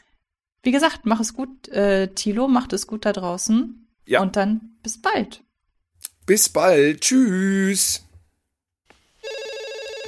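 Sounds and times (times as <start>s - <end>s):
speech: 0.6s - 5.4s, 6.3s - 8.1s
telephone bell ringing with electronic trill: 9.2s - 10.0s.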